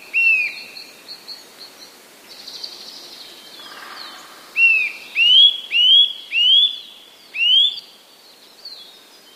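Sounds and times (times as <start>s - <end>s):
Eurasian nuthatch giving clear rising whistled calls: 3.6s - 7.9s.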